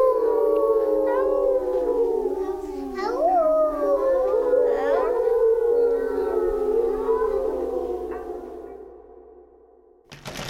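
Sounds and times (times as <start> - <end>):
chorus of wolf howls: 0.0 - 9.8.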